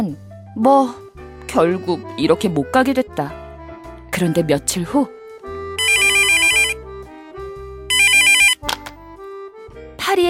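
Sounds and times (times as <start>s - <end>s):
speech: 0.0s - 3.4s, 4.2s - 5.2s
electronic telephone ringtone with bright warbling tones: 5.8s - 6.8s, 7.9s - 8.6s.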